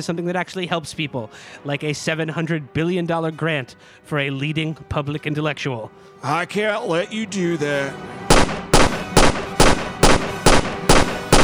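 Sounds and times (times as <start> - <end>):
speech: 0.0 - 8.2
gunshot-style message alert tone: 8.3 - 11.4.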